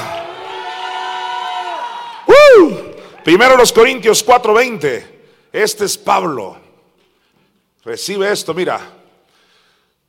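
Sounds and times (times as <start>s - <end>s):
audience cheering and shouting aleluya together: 0.0s - 3.0s
long raised cry: 0.0s - 3.0s
speech: 3.2s - 6.7s, 7.8s - 9.0s.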